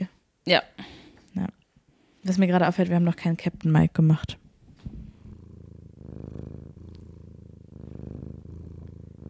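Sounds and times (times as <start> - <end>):
speech: 0.5 - 1.6, 2.2 - 4.4
cat purring: 3.3 - 9.2.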